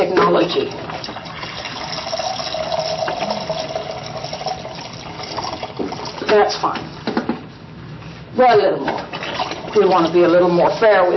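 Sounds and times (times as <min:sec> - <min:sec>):
speech: 0:00.1 - 0:00.8, 0:06.3 - 0:06.9, 0:08.4 - 0:09.1, 0:09.8 - 0:11.1
hot water pouring into a container: 0:00.7 - 0:06.2, 0:09.1 - 0:10.1.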